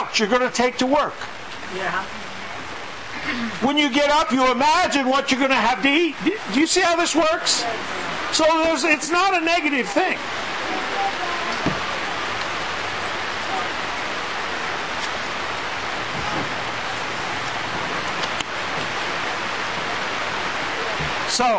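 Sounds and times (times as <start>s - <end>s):
steady rain falling: 0.0s - 21.5s
speech: 0.2s - 2.3s, 3.2s - 10.5s, 21.4s - 21.5s.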